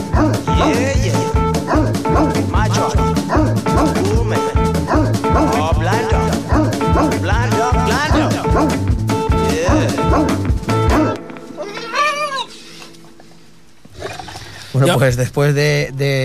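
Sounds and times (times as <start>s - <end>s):
dog owner imitating a whining, howling dog: 0.0s - 4.1s, 4.8s - 7.2s, 8.1s - 8.8s, 9.8s - 12.5s
dense rhythmic sound: 0.0s - 11.6s
70-kilo dog barking: 0.1s - 0.8s, 1.6s - 2.4s, 3.2s - 4.0s, 4.8s - 5.6s, 6.5s - 7.2s, 8.5s - 8.8s, 10.0s - 11.2s
speech: 0.2s - 1.4s, 14.8s - 16.2s.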